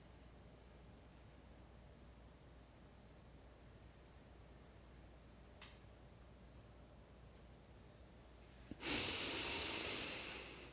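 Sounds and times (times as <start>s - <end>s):
faint click: 5.6s - 5.9s
person exhaling fully during a guided breathing exercise: 8.7s - 10.7s.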